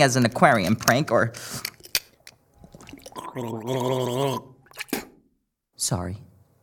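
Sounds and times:
speech: 0.0 - 1.7, 3.4 - 5.0, 5.8 - 6.3
small sloshes of mouthwash: 2.5 - 3.7
person gargling mouthwash: 2.6 - 5.2.

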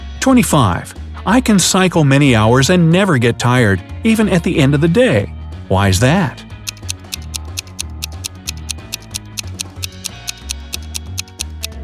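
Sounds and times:
speech: 0.2 - 6.4
clock ticking: 6.7 - 11.8.

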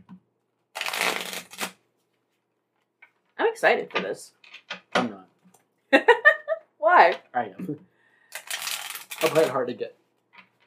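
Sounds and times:
deck of playing cards riffle shuffled: 0.8 - 1.8, 8.4 - 9.6
speech: 3.6 - 5.1, 7.0 - 7.9, 9.2 - 10.0.

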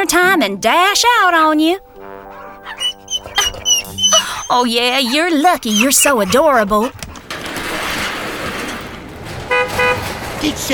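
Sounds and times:
speech: 0.0 - 1.9, 4.5 - 7.0, 10.4 - 10.7
mechanical rumble and rattle: 6.4 - 10.7
truck horn honk: 9.5 - 10.2.

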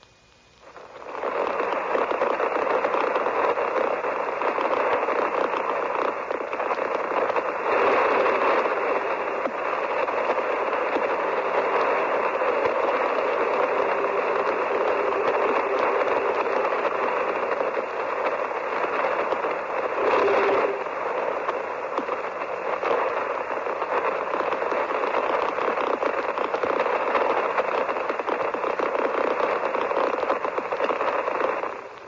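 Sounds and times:
shortwave radio interference static from failed Algiers broadcast: 0.0 - 32.0.

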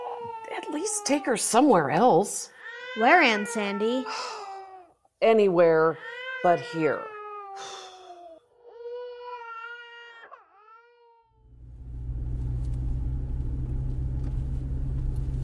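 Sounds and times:
teething baby girl wailing inside a car: 0.0 - 1.4, 2.6 - 4.9, 6.0 - 11.4
speech: 0.6 - 4.4, 5.2 - 7.8
loud steady car engine rumble: 11.4 - 15.4.

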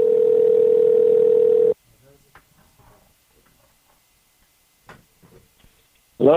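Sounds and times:
phone call ringing tone: 0.0 - 1.8.

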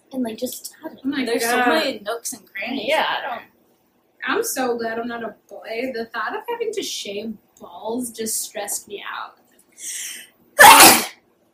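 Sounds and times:
speech: 0.1 - 3.5, 4.2 - 11.0
sharp inhale before a sneeze: 9.8 - 10.3
person sneezing loudly: 10.6 - 11.2.

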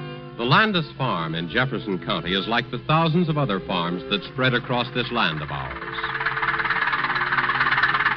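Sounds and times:
speech: 0.4 - 6.2
farm tractor engine chugging while mowing fields: 0.5 - 8.1.

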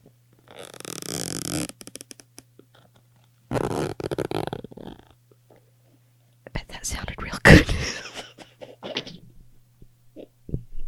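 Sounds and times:
faint steady hum: 0.0 - 10.8
zipper being pulled: 0.4 - 2.9, 3.5 - 5.2
speech: 1.6 - 1.8.

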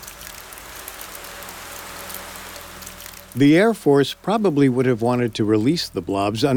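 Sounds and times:
steady rain during a rainstorm over Oakville: 0.0 - 4.7
speech: 3.4 - 6.5.

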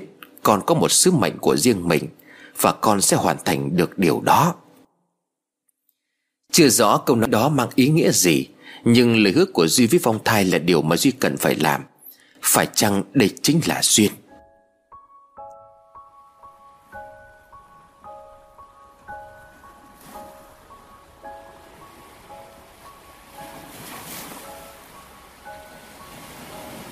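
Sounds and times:
speech: 0.4 - 4.6, 6.5 - 14.2
gentle plucked melody of repeating notes: 14.4 - 26.8
ocean waves lapping on a white-sand beach at a wedding: 16.5 - 26.8.

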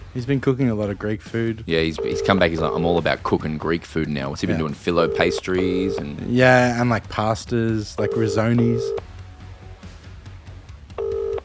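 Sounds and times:
speech: 0.2 - 9.1
phone outgoing ringback tone: 2.0 - 2.8, 5.0 - 6.1, 8.0 - 9.0, 11.0 - 11.4.

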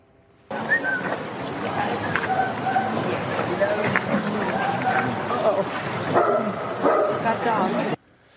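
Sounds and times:
outdoor crowd noise: 0.0 - 8.3
murmuring voices: 0.5 - 8.0
dog barking aggressively: 2.2 - 3.5, 4.4 - 5.5, 6.1 - 7.4.

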